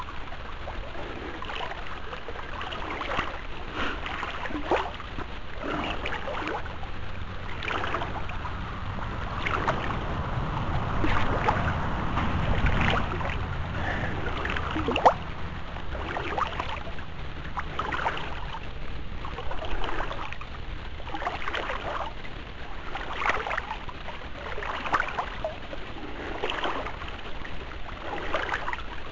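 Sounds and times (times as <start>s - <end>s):
low rumbling undertone: 0.0s - 29.1s
water splashing from swimming strokes in the Charente river: 0.0s - 29.1s.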